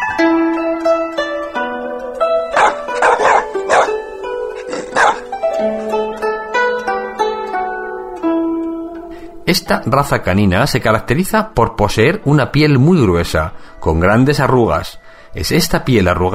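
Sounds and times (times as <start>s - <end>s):
steady melodic music bed: 0.0s - 16.3s
Shar Pei dog barking: 2.6s - 4.0s, 4.6s - 5.3s
speech: 9.5s - 16.3s.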